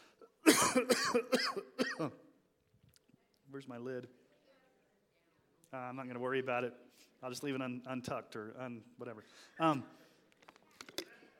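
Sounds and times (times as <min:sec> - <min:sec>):
person coughing harsh raspy wheezy coughs: 0:00.4 - 0:02.3
speech: 0:00.8 - 0:02.2, 0:03.6 - 0:04.2, 0:05.7 - 0:10.0.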